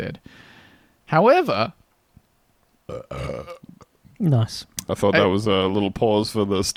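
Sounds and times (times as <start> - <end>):
speech: 0.0 - 0.5, 1.1 - 1.8, 2.9 - 6.7
loud drawn-out resonant burp: 2.9 - 3.9.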